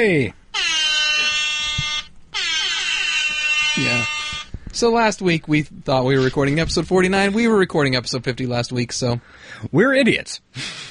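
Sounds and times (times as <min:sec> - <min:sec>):
speech: 0:00.0 - 0:00.4, 0:03.8 - 0:04.2, 0:04.8 - 0:10.8
air horn blasts: 0:00.5 - 0:04.6.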